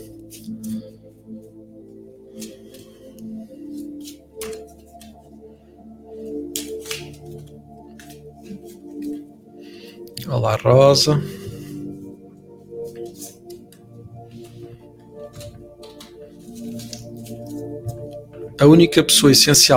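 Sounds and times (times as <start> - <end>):
oracle card deck being shuffled: 0.0 - 0.8, 2.3 - 5.2, 6.2 - 9.2, 12.8 - 18.5
speech: 10.3 - 11.4, 18.7 - 19.7.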